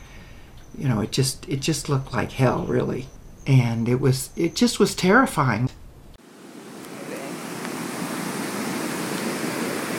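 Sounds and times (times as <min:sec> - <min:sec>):
speech: 0:00.8 - 0:05.7
river in flood roaring with rushing water: 0:06.3 - 0:09.9.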